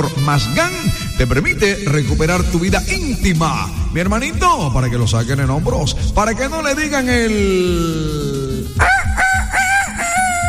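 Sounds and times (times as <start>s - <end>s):
speech: 0.0s - 8.9s
rooster crowing: 8.8s - 10.4s.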